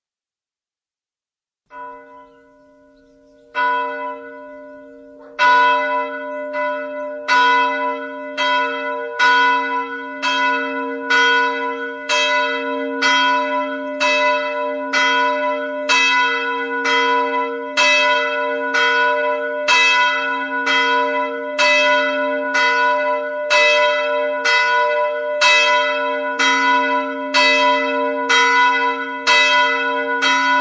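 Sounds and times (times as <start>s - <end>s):
morning church bells ringing: 1.7s - 30.5s.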